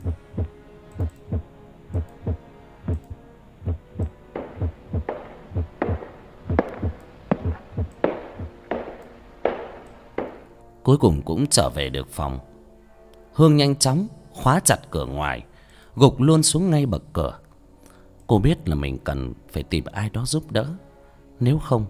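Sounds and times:
rapid frantic pounding heartbeat: 0.0s - 8.9s
speech: 10.9s - 12.5s, 13.4s - 17.4s, 18.3s - 21.8s.

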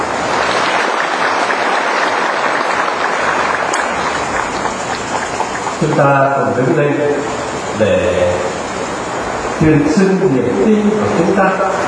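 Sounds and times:
church congregation applauding during a feast-day Mass: 0.0s - 7.0s
speech: 5.8s - 8.5s, 9.6s - 11.8s.

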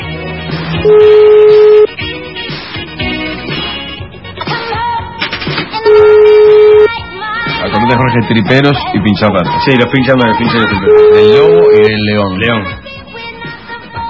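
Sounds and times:
loud music: 0.0s - 12.8s
speech: 0.8s - 1.2s, 8.2s - 12.8s
telephone dialing tones: 0.9s - 1.9s, 5.8s - 6.9s, 10.9s - 11.9s.

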